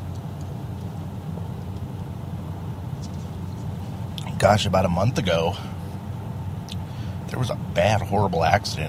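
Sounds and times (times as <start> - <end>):
road and engine noise inside a car driving on Highway 6 in Lincoln: 0.0 - 8.8
speech: 4.4 - 5.8, 7.4 - 8.8.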